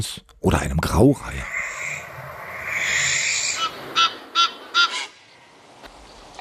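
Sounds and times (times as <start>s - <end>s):
speech: 0.0s - 1.5s
barn owl screeching and calling: 1.4s - 5.4s.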